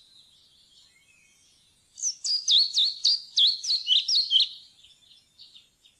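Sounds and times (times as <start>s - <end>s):
European pied flycatcher singing: 0.0s - 5.9s.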